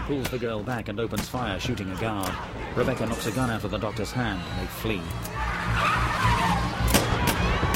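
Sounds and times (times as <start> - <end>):
speech: 0.1 - 6.0
white van tires squealing in a skid in traffic: 2.3 - 7.7.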